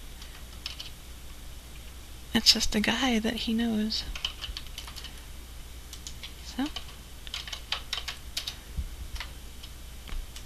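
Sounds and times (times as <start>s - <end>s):
computer keyboard and mouse clicks while dialing a call: 0.2s - 1.0s, 4.1s - 5.2s, 5.9s - 8.6s, 9.2s - 10.4s
speech: 2.4s - 4.2s.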